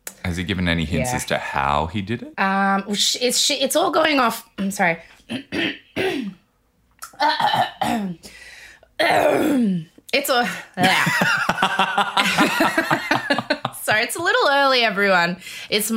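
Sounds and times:
speech: 0.3 - 6.4, 7.2 - 8.4, 9.0 - 13.1, 13.9 - 15.9
person clearing throat: 5.3 - 6.4, 7.0 - 8.2, 9.0 - 9.8
person coughing: 5.3 - 6.4, 7.2 - 8.2, 9.0 - 9.8
laughter: 10.8 - 13.9.

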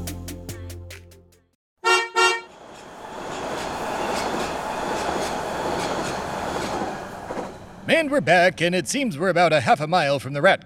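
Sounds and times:
sharp horn blasts: 1.8 - 2.5
subway train rumbling through a tunnel: 2.4 - 8.3
speech: 7.9 - 10.6.

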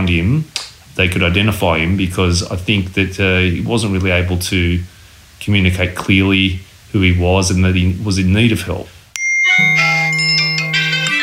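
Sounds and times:
speech: 0.1 - 9.0
police SMS alert tone on a mobile phone: 9.2 - 11.2.

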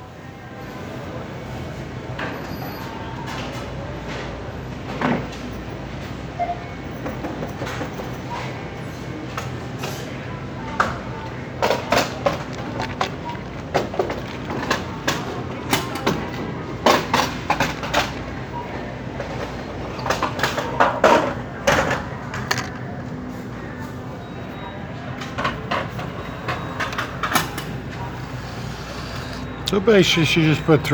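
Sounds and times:
metal shopping carts rattling and rolling: 1.5 - 24.2, 25.2 - 30.9
speech: 29.7 - 30.9.

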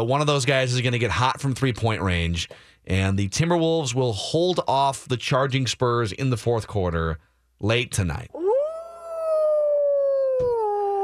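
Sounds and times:
speech: 0.0 - 8.4
puppy howling and whimpering: 8.4 - 11.0.

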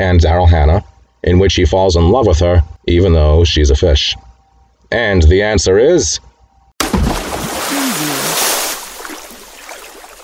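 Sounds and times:
speech: 0.0 - 4.2, 4.9 - 6.3
loud splash of water: 6.8 - 10.2.

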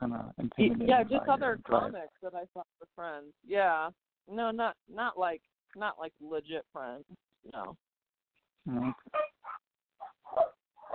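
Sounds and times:
speech: 0.1 - 7.9, 8.6 - 9.6
dog barking: 8.8 - 10.9.

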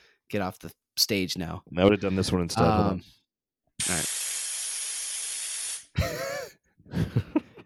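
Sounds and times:
speech: 0.3 - 3.2, 3.8 - 4.2
aerosol spray can hissing: 3.8 - 6.0.

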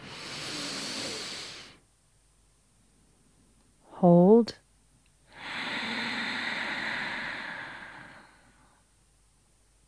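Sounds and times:
slow breath drawn in through the nose during a guided breathing exercise: 0.0 - 1.8, 5.3 - 8.8
speech: 4.0 - 4.6.

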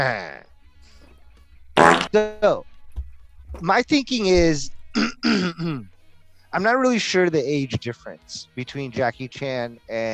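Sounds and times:
speech: 0.0 - 0.5, 2.1 - 2.7, 3.5 - 5.9, 6.5 - 10.1
short loud buzzy fart: 1.8 - 2.6, 4.4 - 5.9.

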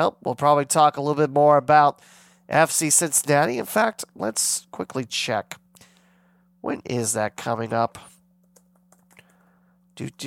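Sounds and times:
speech: 0.0 - 5.6, 6.6 - 8.1, 10.0 - 10.2
low steady electrical hum: 0.0 - 10.2
light keystrokes on a computer keyboard: 8.5 - 9.4.

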